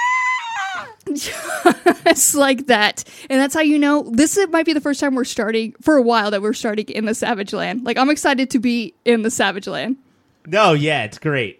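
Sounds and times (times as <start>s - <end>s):
voice imitating a dinosaur scream: 0.0s - 1.0s
speech: 0.8s - 11.5s.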